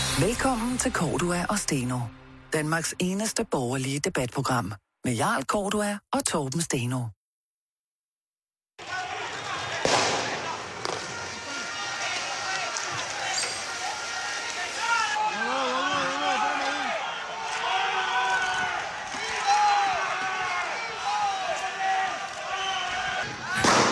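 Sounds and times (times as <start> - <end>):
speech: 0.2 - 7.2
chaotic street crowd shouting during riots: 8.8 - 23.8
gunshots during street riots: 9.7 - 11.2, 23.5 - 23.8.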